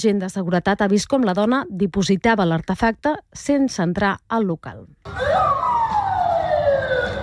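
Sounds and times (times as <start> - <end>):
speech: 0.0 - 5.7
police car siren wailing as the vehicle passes: 5.1 - 7.2.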